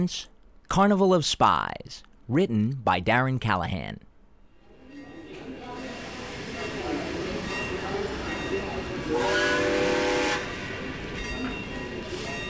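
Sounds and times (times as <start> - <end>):
speech: 0.0 - 4.1
steam train idling at a station with a steady hiss and low rumble: 5.7 - 11.2
steam train whistle blast: 9.0 - 10.7.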